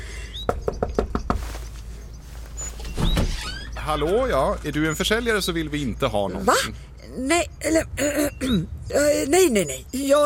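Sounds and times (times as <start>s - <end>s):
firm knocking on a door: 0.5s - 1.5s
speech: 3.9s - 10.2s.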